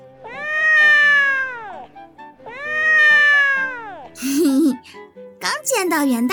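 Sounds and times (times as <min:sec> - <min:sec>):
big fat cat meowing loudly: 0:00.2 - 0:01.9, 0:02.5 - 0:04.1
speech: 0:05.7 - 0:06.3.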